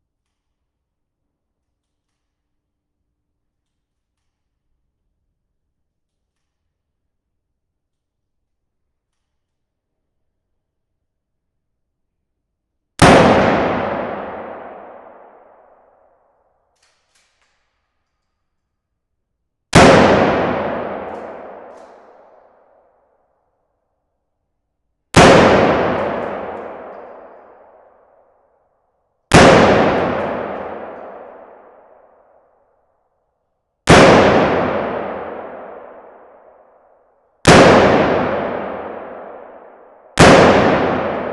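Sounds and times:
12 gauge pump action shotgun single shot in a medium warehouse: 13.0s - 15.4s, 19.8s - 22.3s, 25.2s - 27.7s, 29.3s - 31.8s, 33.9s - 36.4s, 37.5s - 41.3s.

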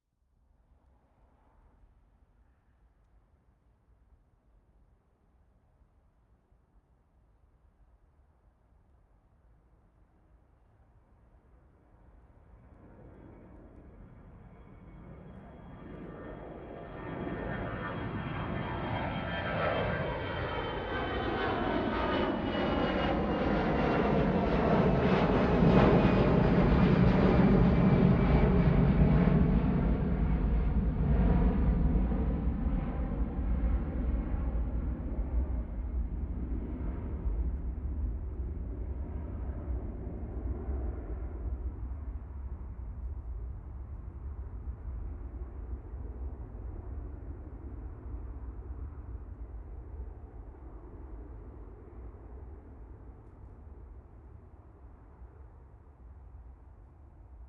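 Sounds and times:
plane taking off: 12.1s - 57.4s.

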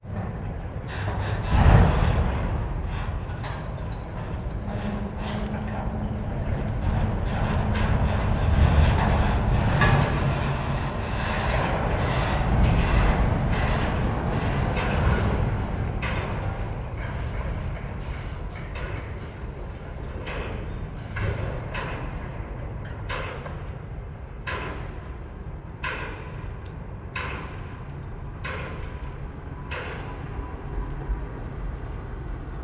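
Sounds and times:
port cranes unloading cargo at night: 0.1s - 32.6s.

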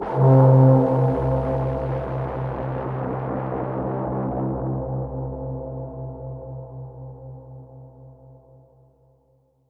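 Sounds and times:
dystopian braam in C: 0.0s - 6.2s.

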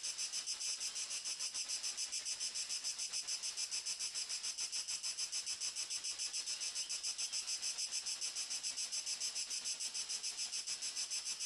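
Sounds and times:
cricket chirping: 0.1s - 11.4s.

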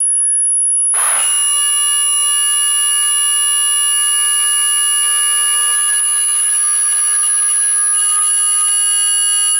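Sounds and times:
high frequency feedback loop: 1.0s - 9.5s.

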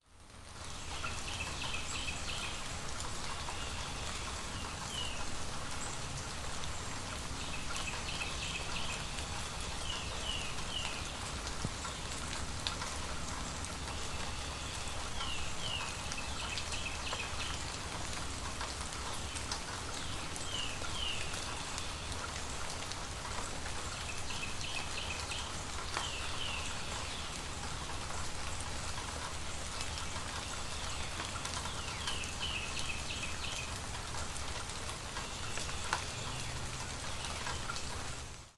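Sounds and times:
rain on an urban apartment porch: 0.0s - 38.5s.

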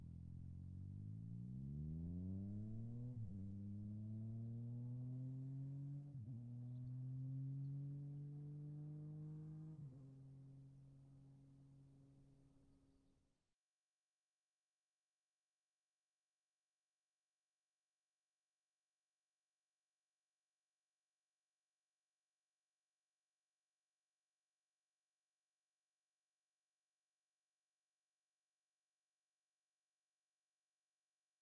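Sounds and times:
Yamaha MT09 motorcycle passing fast: 0.2s - 10.7s.

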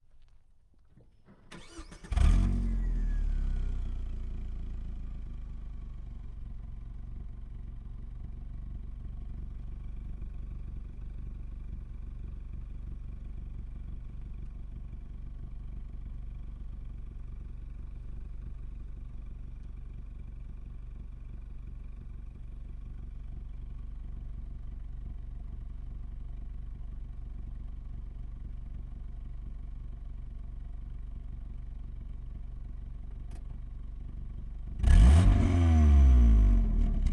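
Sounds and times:
Ford Probe engine starting, idling, revving and shutting off, exterior: 1.5s - 5.5s, 34.7s - 37.1s.

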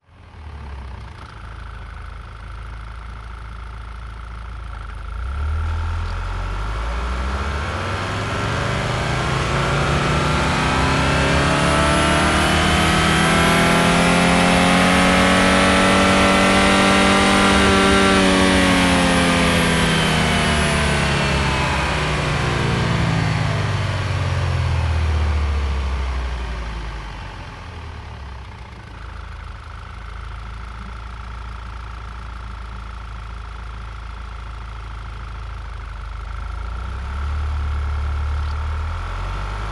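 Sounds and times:
Audi A4 allroad 2.0 TFSI engine revving: 5.1s - 27.2s, 36.8s - 39.6s.

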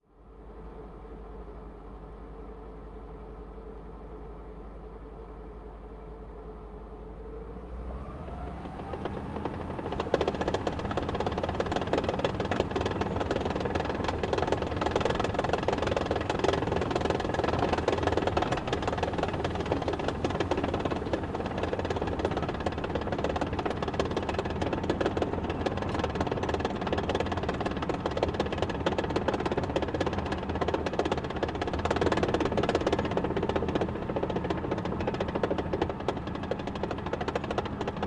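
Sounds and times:
M18 tank engine driving, reversing and stopping, recorded onboard: 6.4s - 38.0s.

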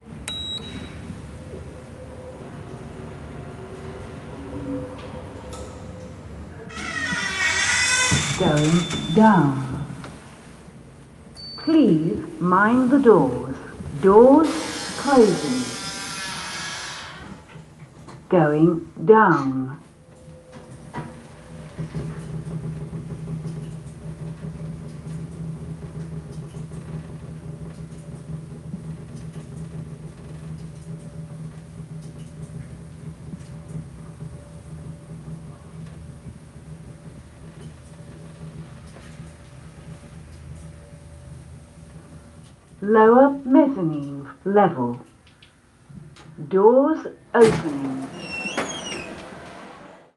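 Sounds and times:
lift ride in a big city interior: 0.0s - 50.1s
person speaking in a lift: 8.4s - 10.0s, 11.7s - 15.8s, 42.8s - 45.1s.

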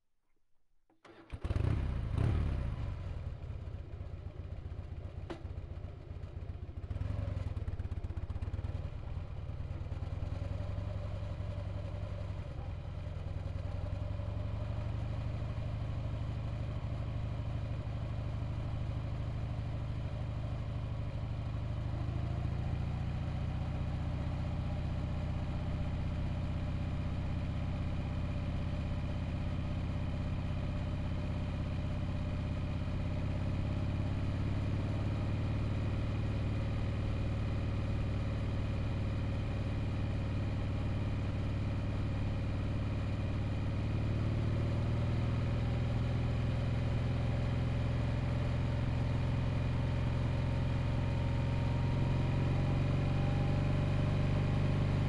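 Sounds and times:
Harley Davidson Softail engine running at steady rpm: 1.1s - 55.0s.

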